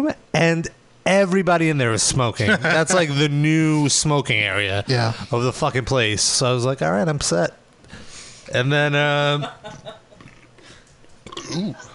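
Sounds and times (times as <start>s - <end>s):
speech: 0.0s - 7.6s, 8.5s - 9.9s, 11.5s - 11.9s
burp: 11.2s - 11.9s.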